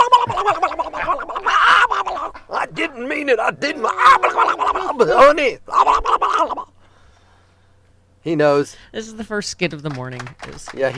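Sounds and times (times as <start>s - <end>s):
voice imitating a turkey gobble: 0.0s - 6.7s
speech: 3.3s - 4.4s, 5.0s - 6.1s, 8.2s - 10.9s.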